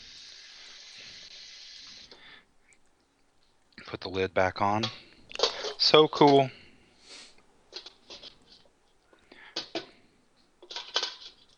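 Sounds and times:
cold tap water running into a pot of pasta: 0.0s - 2.2s
water dripping: 0.0s - 3.8s
speech: 3.8s - 5.1s, 5.8s - 6.6s.

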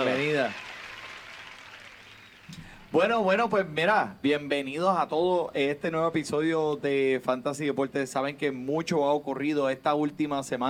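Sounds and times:
crowd applause: 0.0s - 2.5s
speech: 0.4s - 0.7s, 2.5s - 10.6s.

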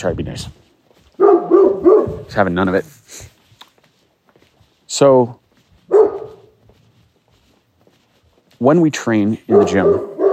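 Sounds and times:
speech: 0.0s - 0.6s, 2.0s - 3.3s, 4.9s - 5.4s, 8.6s - 10.1s
white fluffy dog barking: 1.2s - 2.3s, 5.9s - 6.6s, 9.4s - 10.3s.

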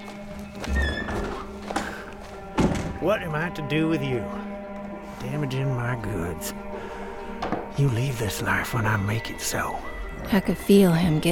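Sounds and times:
wooden doors being shut with dull thunks: 0.0s - 3.3s
speech: 3.0s - 4.5s, 5.2s - 6.7s, 7.8s - 11.3s.

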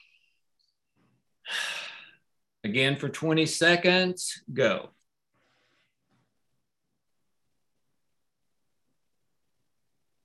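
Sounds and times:
deep breath: 1.4s - 2.2s, 5.4s - 6.2s
speech: 2.7s - 5.0s.

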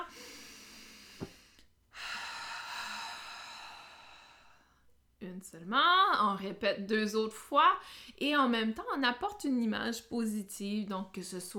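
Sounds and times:
deep breath in a cardiac coherence breathing exercise: 0.0s - 4.8s
speech: 5.4s - 11.5s.

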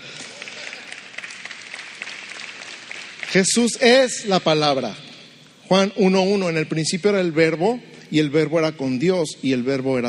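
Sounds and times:
audience applause: 0.0s - 3.8s
speech: 3.3s - 5.1s, 5.7s - 10.0s.

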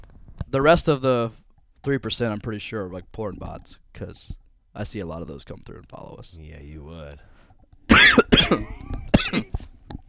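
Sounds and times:
speech: 0.5s - 7.3s, 8.5s - 9.7s
person with a bad cough coughing: 7.9s - 9.6s
faint throat sound: 7.9s - 9.8s.

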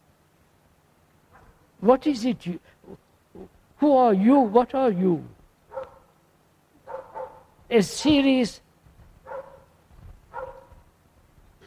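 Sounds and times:
dog barking: 1.3s - 1.6s, 5.7s - 6.1s, 6.8s - 7.6s, 9.2s - 10.8s
speech: 1.8s - 5.4s, 7.7s - 8.6s.

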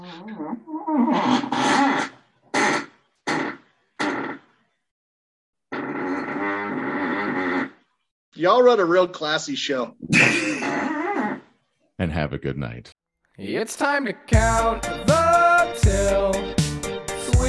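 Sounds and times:
speech: 0.2s - 2.1s, 8.4s - 10.9s, 12.0s - 16.6s
fart sound effects: 1.2s - 4.5s, 5.7s - 7.8s, 10.1s - 11.5s.

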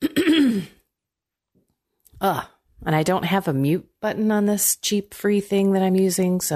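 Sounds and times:
person clearing throat: 0.0s - 0.8s
speech: 2.2s - 6.5s.

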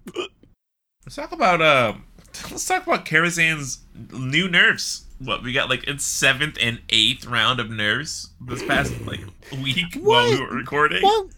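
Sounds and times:
person hiccuping: 0.0s - 0.5s
speech: 1.1s - 11.3s.

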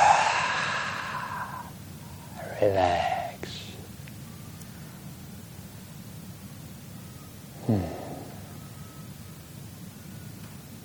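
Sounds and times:
deep breath out during a guided relaxation exercise: 0.0s - 3.9s, 7.6s - 8.6s
speech: 2.6s - 3.6s, 7.7s - 8.0s.

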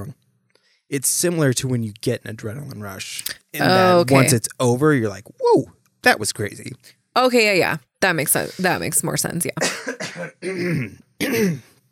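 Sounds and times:
speech: 0.9s - 11.7s
person clearing throat: 9.6s - 11.8s.

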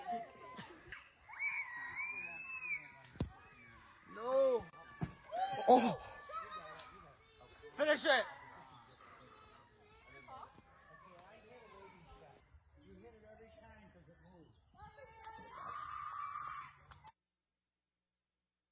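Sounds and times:
little kids screaming and crying: 0.0s - 12.4s, 15.2s - 16.9s
speech: 5.7s - 6.1s, 8.0s - 8.4s.

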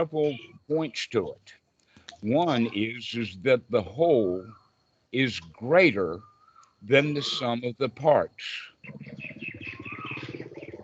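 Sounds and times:
speech: 0.0s - 9.3s
birds chirping and tweeting: 0.0s - 10.8s
birds quacking through an open microphone: 6.2s - 7.6s, 8.7s - 10.8s.

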